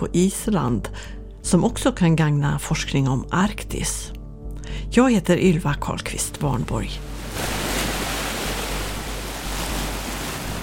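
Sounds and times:
speech: 0.0 - 7.6
low wind rumble: 7.0 - 10.6
sea waves washing onto the shore in Reykjavik Iceland: 7.0 - 10.6.

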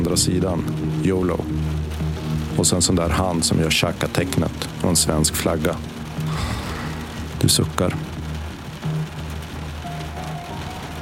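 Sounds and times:
rain falling: 0.0 - 11.0
speech: 0.1 - 1.9, 2.6 - 6.6, 7.4 - 8.1.

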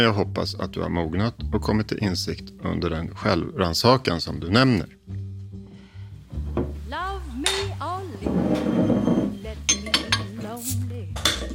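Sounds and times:
speech: 0.0 - 5.2
glasses of alcohol-free drinks clinking in a toast: 7.5 - 10.6, 11.2 - 11.5.

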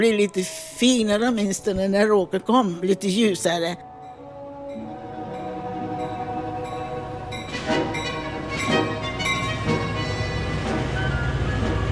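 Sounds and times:
speech: 0.0 - 3.9
train rolling slowly into a railway station: 3.9 - 11.9
train cars clanking and rattling: 5.4 - 11.9.

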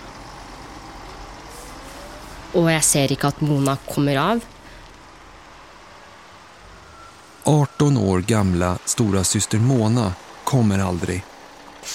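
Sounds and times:
large bus engines rumbling: 0.0 - 11.9
bus air brakes hissing: 1.4 - 2.5, 10.9 - 11.9
speech: 2.5 - 4.6, 7.4 - 11.9.

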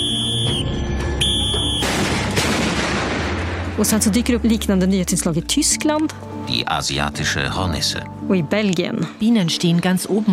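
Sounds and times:
high steady electronic tone: 0.0 - 1.9
firecracker blast destroying a hornet nest: 1.2 - 3.7
speech: 3.8 - 10.3.

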